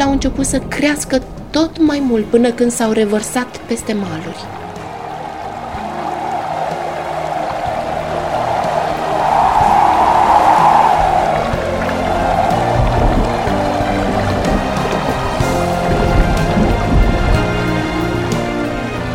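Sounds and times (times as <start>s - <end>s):
speech: 0.0s - 4.6s
heavy rain in a storm: 4.4s - 18.3s
strong storm wind: 4.4s - 19.1s.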